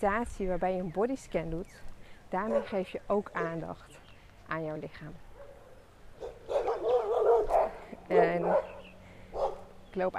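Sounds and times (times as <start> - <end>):
speech: 0.0 - 5.2, 8.1 - 8.8, 10.0 - 10.1
dog at a house barking and yelping at another dog passing by: 2.4 - 2.8, 5.3 - 9.7.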